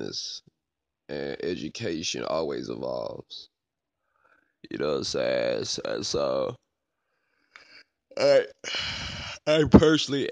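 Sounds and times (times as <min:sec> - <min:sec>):
speech: 0:00.1 - 0:00.5, 0:01.1 - 0:03.5, 0:04.6 - 0:06.6, 0:08.2 - 0:10.3
breathy yawn: 0:07.6 - 0:09.5.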